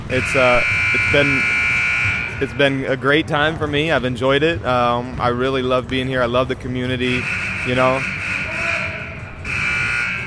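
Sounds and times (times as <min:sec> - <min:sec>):
speech: 0:00.1 - 0:01.6, 0:02.4 - 0:08.2
school buzzer sounding: 0:00.1 - 0:02.6, 0:07.2 - 0:10.2.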